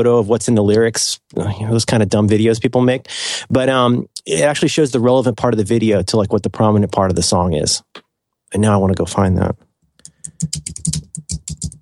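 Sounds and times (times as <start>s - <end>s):
speech: 0.0s - 9.7s, 10.3s - 11.1s
rapid typing on a computer keyboard: 10.0s - 11.8s.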